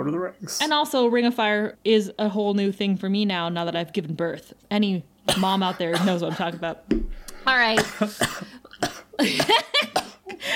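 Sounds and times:
speech: 0:00.0 - 0:10.5
person coughing: 0:05.3 - 0:06.6, 0:07.6 - 0:10.4.

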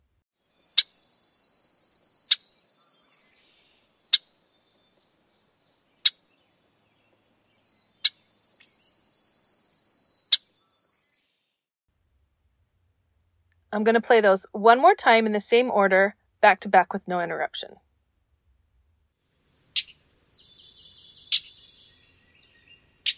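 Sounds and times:
speech: 0:13.7 - 0:17.8
red-winged blackbird chuck calls: 0:19.8 - 0:21.8, 0:22.6 - 0:23.1.

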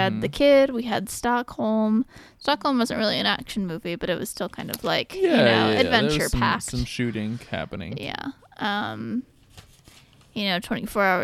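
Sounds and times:
speech: 0:00.0 - 0:09.3, 0:10.4 - 0:11.2
paper pages being turned: 0:09.4 - 0:10.3.

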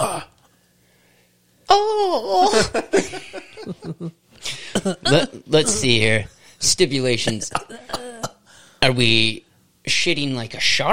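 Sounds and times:
faint hum: 0:00.0 - 0:10.9
speech: 0:01.7 - 0:04.2, 0:04.8 - 0:08.0, 0:08.8 - 0:10.9
laughter: 0:02.4 - 0:04.2
person coughing: 0:04.5 - 0:06.0, 0:07.2 - 0:08.5.

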